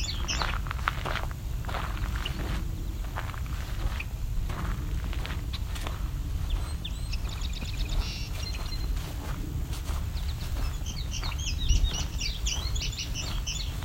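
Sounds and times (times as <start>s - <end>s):
male Indigo Bunting singing from a tall beech tree: 0.0s - 0.7s, 6.4s - 13.8s
steady background noise: 0.0s - 13.8s.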